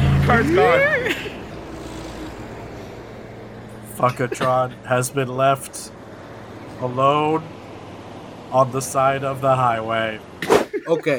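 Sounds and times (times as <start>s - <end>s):
speech: 0.3s - 1.2s, 4.0s - 6.0s, 6.8s - 7.6s, 8.5s - 11.1s
voice imitating car tires peeling out: 0.4s - 2.9s.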